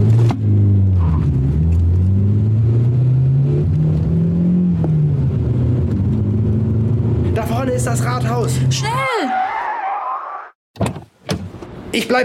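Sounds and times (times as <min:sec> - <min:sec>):
car engine revving as the vehicle accelerates away: 0:00.0 - 0:09.0
speech: 0:07.8 - 0:09.4, 0:11.9 - 0:12.2.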